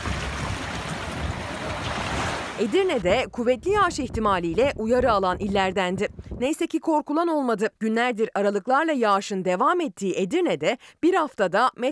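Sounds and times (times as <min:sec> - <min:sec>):
rough water and waves churning around moored boats at a fishing shelter in Erdemli during a storm: 0:00.0 - 0:03.3
gusty storm wind at a fishing harbor in Erdemli: 0:00.0 - 0:06.7
speech: 0:02.6 - 0:11.9.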